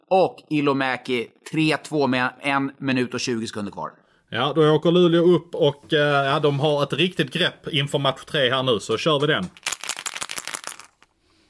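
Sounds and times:
speech: 0:00.1 - 0:09.7
dice rattling and clattering across a hard surface: 0:09.5 - 0:11.1.

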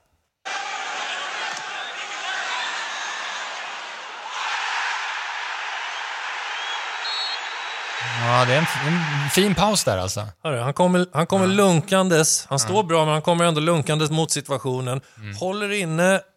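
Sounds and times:
football stadium crowd roaring: 0:00.4 - 0:09.8
referee whistle: 0:06.5 - 0:08.8
speech: 0:08.4 - 0:16.3.

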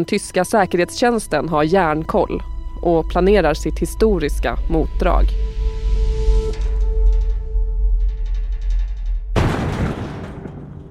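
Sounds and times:
speech: 0:00.0 - 0:05.6
low droning hum with faint tonal shimmer: 0:00.2 - 0:10.9
explosion blasting open an apartment door: 0:09.4 - 0:10.9.

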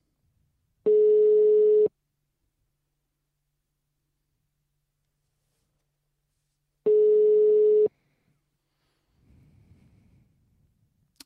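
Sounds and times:
electronic ringback tones of a phone call: 0:00.9 - 0:01.9, 0:06.9 - 0:07.9.

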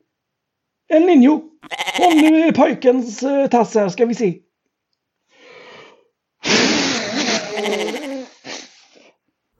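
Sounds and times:
speech: 0:00.9 - 0:04.4, 0:07.6 - 0:08.1
goat bleating: 0:01.6 - 0:02.4, 0:07.4 - 0:08.3.

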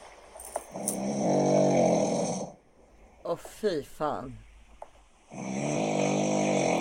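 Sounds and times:
sleeping man snoring: 0:00.7 - 0:02.6, 0:05.3 - 0:06.8
speech: 0:03.4 - 0:04.5, 0:05.3 - 0:05.8.

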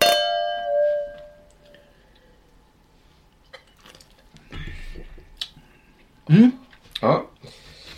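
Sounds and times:
champagne glasses clinking in a toast: 0:00.0 - 0:01.4
speech: 0:06.3 - 0:07.2.

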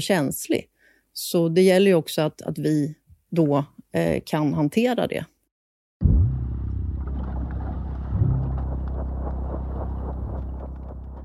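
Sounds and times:
speech: 0:00.0 - 0:05.3
car engine rumble driving on a road leaving Västerås: 0:06.0 - 0:11.2.

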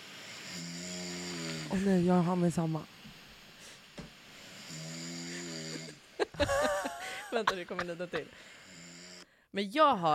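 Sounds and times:
person snoring while asleep: 0:00.0 - 0:02.2, 0:03.6 - 0:07.5, 0:08.2 - 0:09.4
low hiss: 0:00.0 - 0:10.1
speech: 0:01.7 - 0:02.9, 0:07.3 - 0:08.6, 0:09.5 - 0:10.1
laughter: 0:05.7 - 0:08.4.

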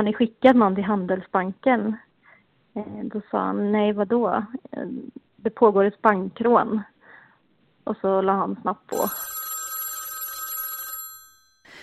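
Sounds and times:
speech: 0:00.0 - 0:02.1, 0:02.8 - 0:06.9, 0:07.8 - 0:09.4
telephone ringing in a newspaper newsroom: 0:08.9 - 0:11.7.

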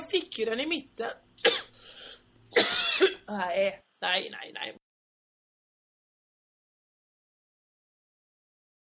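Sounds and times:
speech: 0:00.1 - 0:01.7, 0:02.5 - 0:04.8
person coughing: 0:01.4 - 0:03.3.

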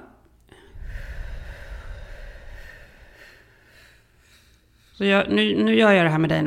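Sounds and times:
breath pushed out through the mouth during a breathing exercise: 0:00.5 - 0:05.0
speech: 0:05.0 - 0:06.4.

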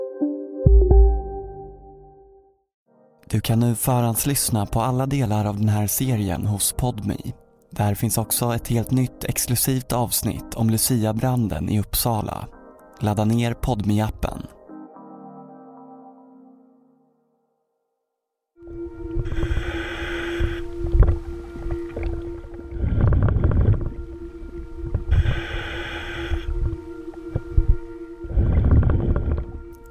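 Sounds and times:
speech: 0:00.2 - 0:00.4, 0:03.3 - 0:14.6
steady low underwater hum: 0:18.6 - 0:29.8.

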